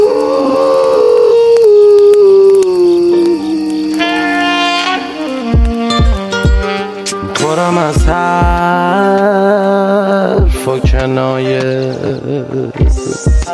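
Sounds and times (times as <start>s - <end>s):
long wavering howl: 0.0s - 7.4s
beat: 5.4s - 9.3s, 10.4s - 13.5s
deep bass thumps: 5.5s - 6.7s, 8.0s - 8.7s, 10.4s - 11.1s, 12.8s - 13.5s.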